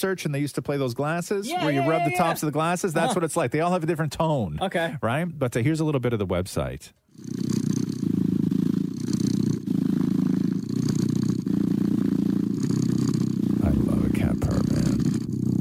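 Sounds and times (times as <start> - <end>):
speech: 0.0 - 7.5
cat purring against the microphone: 7.1 - 15.6.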